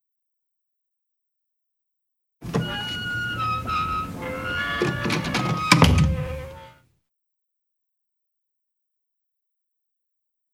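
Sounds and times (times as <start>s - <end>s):
door swinging shut with a solid thud: 2.4s - 6.7s.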